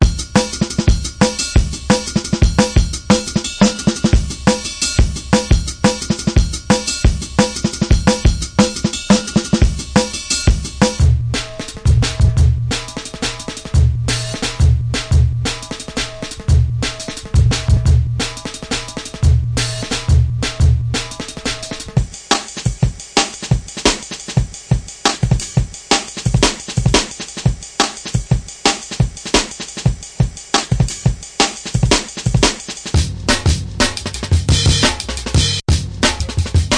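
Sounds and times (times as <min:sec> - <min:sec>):
drum and bass licks: 0:00.0 - 0:36.7.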